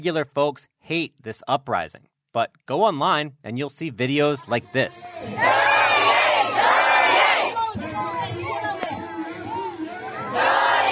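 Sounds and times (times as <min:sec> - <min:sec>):
speech: 0:00.0 - 0:05.7
scattered voices: 0:04.6 - 0:10.8
large crowd chanting slogans in unison in towns in Myanmar: 0:05.0 - 0:10.8.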